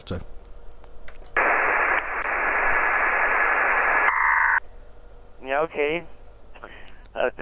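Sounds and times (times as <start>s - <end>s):
speech: 0.0s - 0.4s, 5.6s - 6.2s, 7.2s - 7.4s
faint steady whine in shortwave radio interference: 0.4s - 7.4s
shortwave radio interference static hiss from an adjacent signal: 1.4s - 4.6s.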